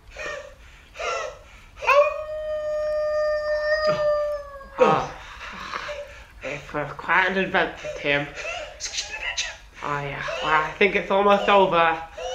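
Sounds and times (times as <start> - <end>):
wolf howling: 1.8 - 5.2
speech: 4.8 - 5.1, 6.8 - 9.0, 9.8 - 12.1.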